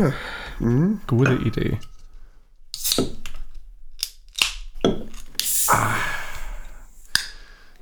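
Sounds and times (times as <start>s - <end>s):
speech: 0.0s - 1.9s
can of lager being opened: 2.7s - 7.4s.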